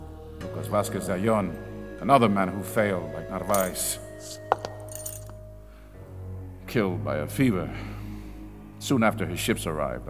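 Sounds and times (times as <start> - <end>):
speech: 0.6 - 4.5, 6.7 - 7.9, 8.8 - 10.0
small pieces of Spanish glass clinking together: 3.5 - 5.4.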